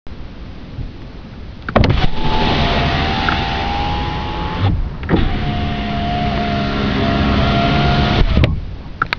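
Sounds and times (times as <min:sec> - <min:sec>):
defective power window regulator: 0:01.8 - 0:08.6.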